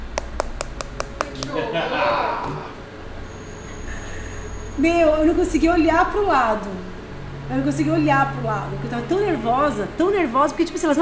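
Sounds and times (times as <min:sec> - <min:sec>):
knocking on a car window at night: 0:00.2 - 0:01.6
laughter: 0:01.5 - 0:02.8
speech: 0:04.8 - 0:06.9, 0:07.5 - 0:10.9.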